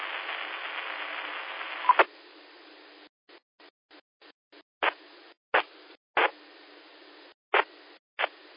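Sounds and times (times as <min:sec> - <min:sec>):
choppy bursts and sharp clicks of a weak radio transmission: 0:00.0 - 0:02.1, 0:03.3 - 0:06.4, 0:07.1 - 0:08.5
thin band-limited amateur radio static hiss: 0:00.0 - 0:03.7, 0:04.5 - 0:08.5.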